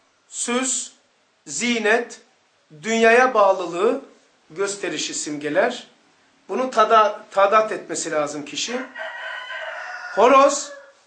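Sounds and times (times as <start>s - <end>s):
speech: 0.3s - 5.9s, 6.5s - 9.2s, 10.2s - 10.8s
rooster crowing: 8.7s - 11.0s.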